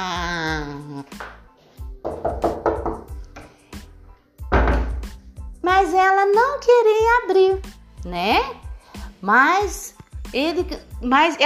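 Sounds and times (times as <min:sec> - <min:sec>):
knocking on a door in the morning: 0:02.0 - 0:03.1, 0:04.5 - 0:05.2
speech: 0:05.9 - 0:08.6, 0:09.2 - 0:11.4.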